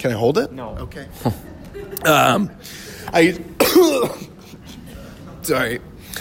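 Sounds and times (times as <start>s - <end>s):
speech: 0.0s - 4.3s, 5.4s - 6.1s
laughter: 1.2s - 3.5s
rough raspy coughs: 3.6s - 4.6s.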